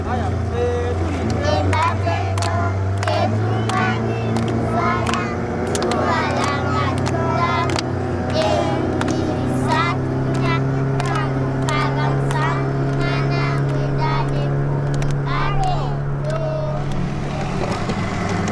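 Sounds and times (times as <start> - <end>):
several voices talking or singing loudly: 0.0 - 17.8
motorboat engine droning on a lake: 0.0 - 18.5.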